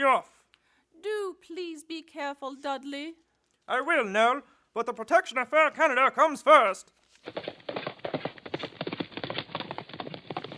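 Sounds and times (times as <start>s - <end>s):
speech: 1.0s - 7.6s
horse hooves clip-clopping at a trot: 7.2s - 10.5s.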